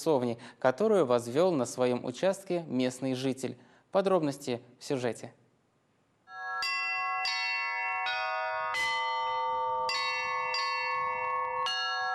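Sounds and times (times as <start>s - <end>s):
speech: 0.0s - 5.4s
church bells ringing from a belfry: 6.3s - 12.1s.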